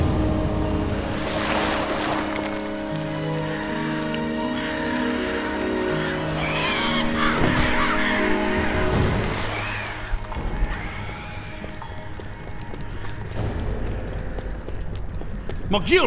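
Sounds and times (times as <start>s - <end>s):
rumbling noise: 0.0s - 3.5s, 7.8s - 16.0s
steady wash of sloshing water: 0.0s - 15.5s
crow cawing harshly: 2.9s - 13.1s
speech: 15.8s - 16.0s.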